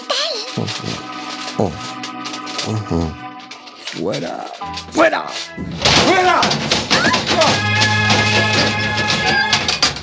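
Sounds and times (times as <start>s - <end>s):
speech: 1.6s - 2.0s, 2.7s - 3.2s, 3.9s - 7.7s
heavy metallic crash and clatter: 4.6s - 10.0s.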